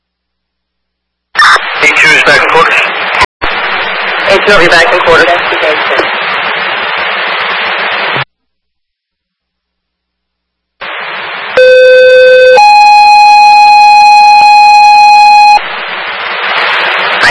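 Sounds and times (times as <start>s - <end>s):
radio static: 1.4s - 8.3s, 10.8s - 11.6s, 15.4s - 17.2s
speech: 4.5s - 6.1s
fire department dispatch alarm tones for a smoke investigation: 11.6s - 15.6s.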